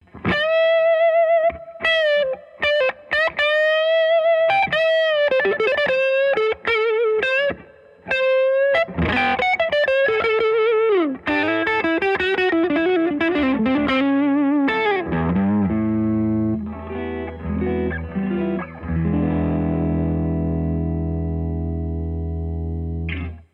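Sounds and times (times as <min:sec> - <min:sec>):
mid gain lead: 0:00.0 - 0:23.5.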